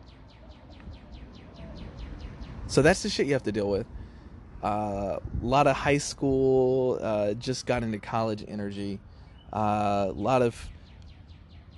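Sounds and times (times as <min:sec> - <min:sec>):
bird chirping outdoors: 0:00.0 - 0:04.2, 0:08.4 - 0:11.7
speech: 0:02.7 - 0:04.0, 0:04.6 - 0:10.8.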